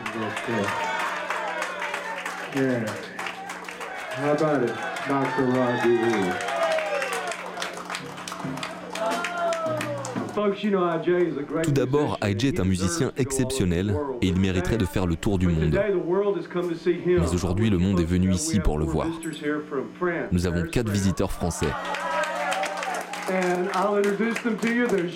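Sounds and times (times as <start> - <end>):
audience clapping: 0.0 - 10.4, 21.0 - 25.1
loud audience voices and cheering: 0.0 - 10.4, 21.0 - 23.5
speech: 0.2 - 0.9, 2.5 - 3.1, 4.2 - 6.5, 10.4 - 22.0, 23.3 - 25.1.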